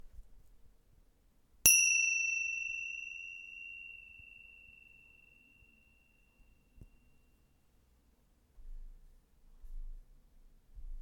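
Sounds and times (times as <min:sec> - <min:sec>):
chimes: 0:01.7 - 0:06.6.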